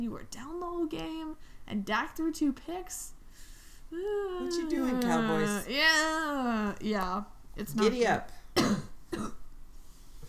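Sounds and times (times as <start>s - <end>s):
speech: 0.0s - 3.2s, 3.9s - 9.4s
person coughing with congested throaty quality: 8.6s - 9.4s.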